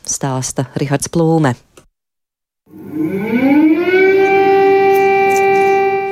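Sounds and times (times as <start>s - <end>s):
speech: 0.2s - 1.7s
air raid siren in Ukraine winding up and wailing: 2.7s - 6.0s.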